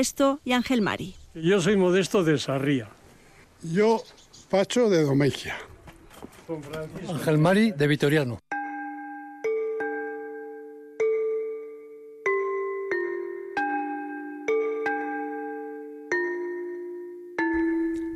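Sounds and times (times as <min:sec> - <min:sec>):
speech: 0:00.0 - 0:03.0, 0:03.6 - 0:05.7, 0:06.5 - 0:08.5
church bells ringing in a bell tower: 0:08.5 - 0:11.6, 0:12.3 - 0:18.1.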